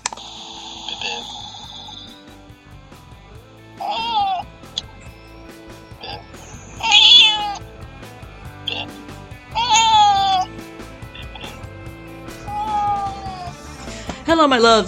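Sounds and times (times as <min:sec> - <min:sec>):
music: 0:00.0 - 0:14.8
cat meowing: 0:03.8 - 0:04.5, 0:06.8 - 0:07.6, 0:09.5 - 0:10.5, 0:12.4 - 0:13.7
speech: 0:14.4 - 0:14.8.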